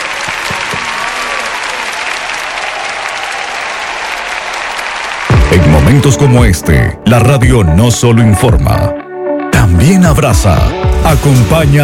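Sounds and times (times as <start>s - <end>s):
audience applause: 0.0s - 6.5s
speech: 5.5s - 9.0s, 9.7s - 11.8s.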